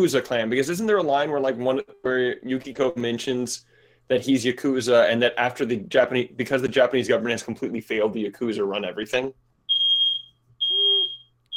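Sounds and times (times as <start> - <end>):
speech: 0.0 - 9.4
fire alarm beeping high-pitched: 9.7 - 11.5.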